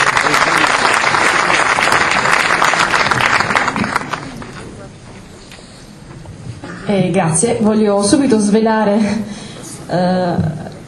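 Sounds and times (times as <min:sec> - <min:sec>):
audience applause: 0:00.0 - 0:04.9
speech: 0:06.9 - 0:10.6.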